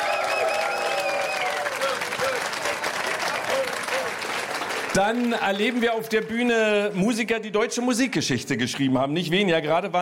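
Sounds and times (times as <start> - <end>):
faint cheering or voices: 0.0 - 4.2
audience applauding: 0.0 - 7.3
speech: 5.0 - 9.9.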